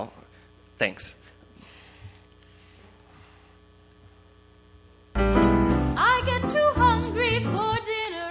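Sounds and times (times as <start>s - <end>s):
speech: 0.8s - 1.2s
wavering vibrato-rich lead melody with light reverb: 5.2s - 7.9s.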